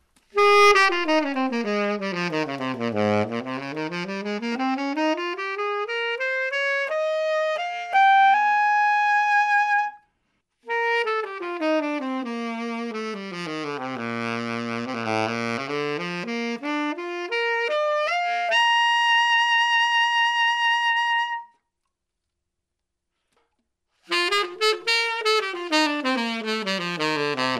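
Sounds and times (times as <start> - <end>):
classical jazz tenor saxophone: 0.3 - 10.0, 10.6 - 21.6, 24.0 - 27.5.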